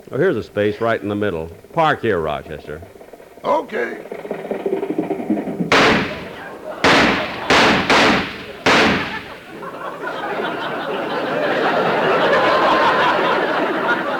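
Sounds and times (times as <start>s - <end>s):
murmur of noise: 0.0s - 14.1s
speech: 0.1s - 4.2s
gunshots fired by a parking attendant in a studio lot: 5.7s - 9.6s
laughter: 6.1s - 14.1s.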